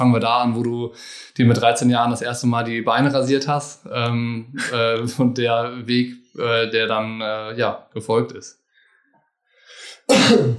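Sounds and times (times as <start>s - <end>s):
speech: 0.0s - 8.6s, 10.1s - 10.5s
brief breathy inhale: 1.0s - 1.4s, 8.7s - 10.1s
laughter: 4.5s - 5.2s
single loud cough: 10.0s - 10.5s.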